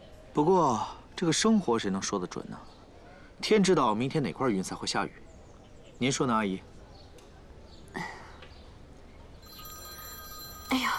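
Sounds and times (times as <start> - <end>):
speech: 0.4 - 2.8, 3.4 - 5.2, 6.0 - 6.7
faint electronic telephone ringtone: 9.4 - 10.9.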